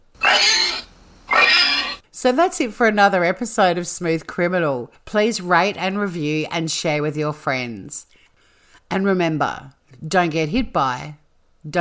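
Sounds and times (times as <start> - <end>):
pig grunting: 0.2 - 2.0
speech: 2.2 - 8.2, 8.9 - 11.7.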